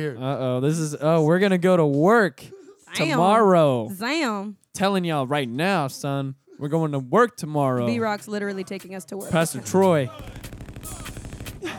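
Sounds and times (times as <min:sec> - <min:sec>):
speech: 0:00.0 - 0:10.6
booming music track with a dense rhythmic beat: 0:09.2 - 0:11.7
rapid gunfire bursts in a song: 0:10.2 - 0:11.6.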